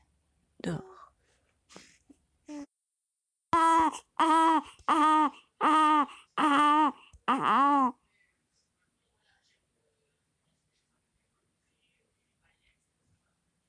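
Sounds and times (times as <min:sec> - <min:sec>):
speech: 0:00.6 - 0:00.9
baby crying: 0:03.6 - 0:08.0.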